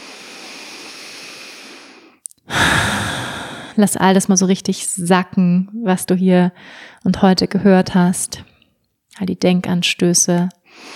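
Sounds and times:
deep breath in and out during a guided relaxation exercise: 0.0s - 3.8s, 6.6s - 7.0s, 10.7s - 10.9s
speech: 3.8s - 8.5s, 9.2s - 10.9s.

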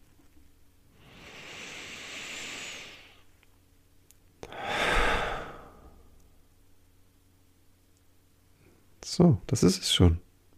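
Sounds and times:
slow deep breath in: 1.0s - 3.2s, 4.5s - 6.0s
speech: 9.2s - 10.2s.

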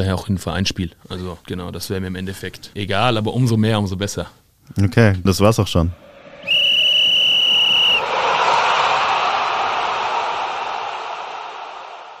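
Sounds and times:
speech: 0.0s - 6.0s
stadium crowd noise: 6.0s - 12.1s
referee's whistle blast for a penalty kick: 6.4s - 8.0s.

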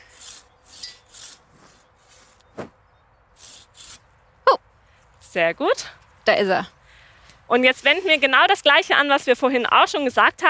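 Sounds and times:
hand saw rasping through a tree branch: 0.0s - 2.7s, 3.4s - 4.0s
speech: 5.3s - 6.8s, 7.5s - 10.4s.

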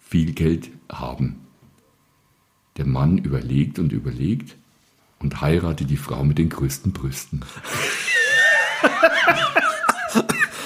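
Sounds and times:
speech: 0.1s - 1.4s, 2.8s - 4.6s, 5.2s - 8.0s, 9.0s - 10.3s
audience laughing warmly: 7.7s - 10.6s
coughing: 7.7s - 10.6s.

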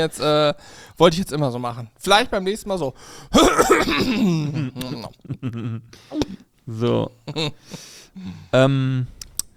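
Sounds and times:
speech: 0.0s - 9.2s
breaths: 0.6s - 1.0s, 3.0s - 3.4s, 5.9s - 6.6s, 7.6s - 9.4s
drawn-out throat clearing with raspy bursts: 3.4s - 5.1s.

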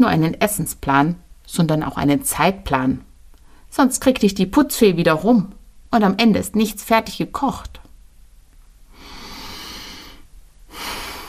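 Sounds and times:
speech: 0.0s - 3.1s, 3.7s - 7.8s
person breathing deeply before planning a meal: 8.9s - 11.2s.

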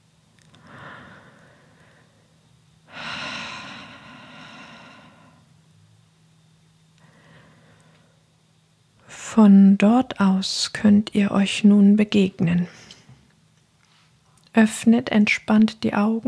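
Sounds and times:
group of people breathing: 0.5s - 2.2s, 2.9s - 5.5s, 7.0s - 8.3s
speech: 9.4s - 12.9s, 14.6s - 16.2s.

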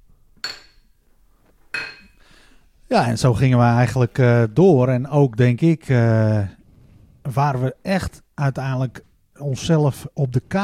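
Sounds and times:
beer glasses clinking in a toast: 0.4s - 1.0s, 1.7s - 2.2s
speech: 2.9s - 6.6s, 7.2s - 10.6s.

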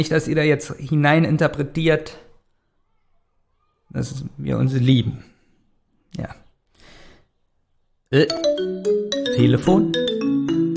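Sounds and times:
speech: 0.0s - 2.2s, 3.9s - 5.3s, 6.1s - 6.4s, 8.1s - 10.2s
phone melodic ringtone of bright stepped electronic notes: 8.2s - 10.7s.

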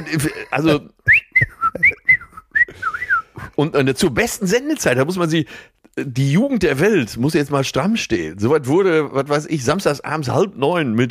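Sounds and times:
laughter: 0.0s - 2.4s
speech: 0.1s - 2.0s, 3.6s - 11.1s
person whistling a lively melody: 1.0s - 3.5s.

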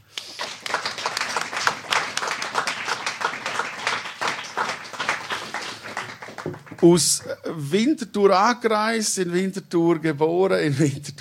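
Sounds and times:
audience applause: 0.0s - 7.2s
speech: 6.8s - 11.1s.

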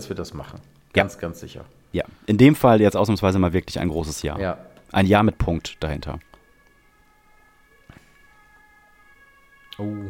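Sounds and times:
speech: 0.0s - 6.3s, 9.8s - 10.0s
emergency vehicle siren wailing outside: 5.1s - 10.0s.

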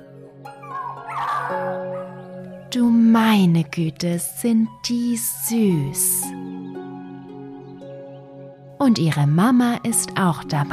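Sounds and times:
puppies whimpering in straw behind a wooden fence: 0.5s - 2.4s
speech: 2.7s - 6.4s, 8.8s - 10.7s.

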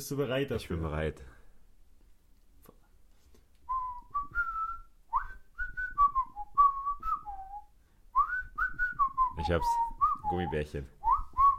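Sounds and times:
speech: 0.0s - 1.4s, 9.4s - 11.0s
person whistling a bouncy cartoon theme melody: 3.7s - 11.5s.

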